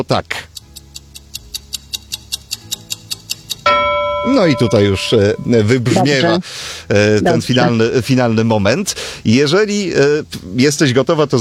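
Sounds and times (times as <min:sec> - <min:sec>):
speech: 0:00.0 - 0:00.5, 0:04.2 - 0:11.4
quiz countdown clock ticking: 0:00.5 - 0:06.4
metallic gong strike: 0:03.7 - 0:06.4.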